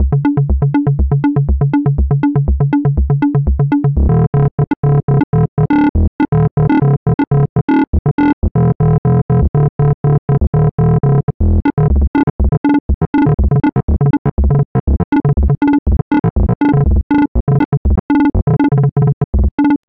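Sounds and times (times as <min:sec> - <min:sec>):
synth arpeggio: 0:00.0 - 0:19.8.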